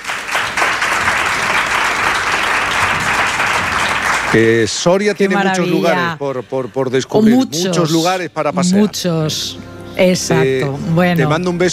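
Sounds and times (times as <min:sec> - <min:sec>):
audience applause: 0:00.0 - 0:05.6
speech: 0:04.3 - 0:11.7.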